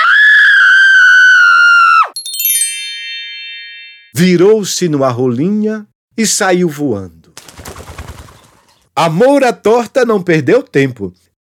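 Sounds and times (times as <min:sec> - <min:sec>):
young woman screaming: 0:00.0 - 0:02.2
sparkling chime-like shimmer: 0:02.2 - 0:04.2
speech: 0:04.2 - 0:07.2, 0:09.0 - 0:11.3.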